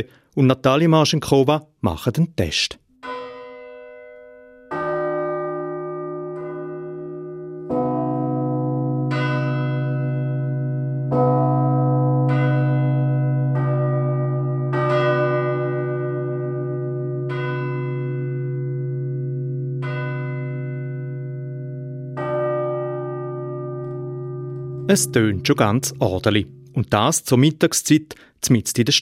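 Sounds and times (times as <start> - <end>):
speech: 0.0 - 2.8, 24.9 - 28.9
church bells pealing at midday in St. Gallen Switzerland: 3.0 - 27.6.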